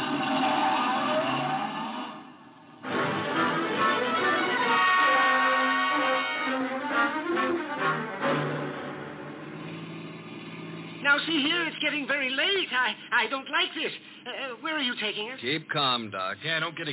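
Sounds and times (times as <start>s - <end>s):
car engine revving as the car pulls away: 0.0s - 11.1s
speech: 11.3s - 16.9s.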